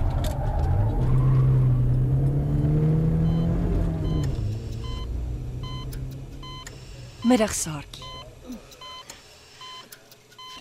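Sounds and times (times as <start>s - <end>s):
car engine rumble while driving: 0.0s - 9.3s
speech: 7.3s - 8.1s.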